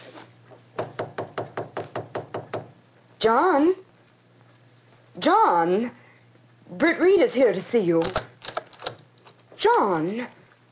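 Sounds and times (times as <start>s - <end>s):
faint low hum: 0.0s - 10.6s
knocking on the wooden door of a study: 0.8s - 2.8s
speech: 3.2s - 3.8s, 5.2s - 6.0s, 6.7s - 8.3s, 9.6s - 10.4s.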